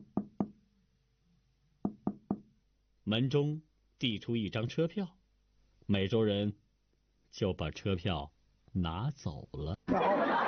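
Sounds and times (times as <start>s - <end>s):
knocking on a train's toilet door: 1.8s - 2.5s
speech: 3.1s - 5.2s, 5.9s - 6.6s, 7.3s - 10.4s
laughter: 9.9s - 10.4s.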